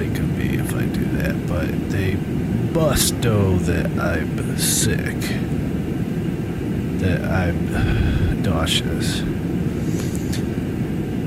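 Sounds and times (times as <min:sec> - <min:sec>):
jet engines droning inside an airplane cabin in flight: 0:00.0 - 0:11.2
speech: 0:01.6 - 0:05.6, 0:07.0 - 0:09.5.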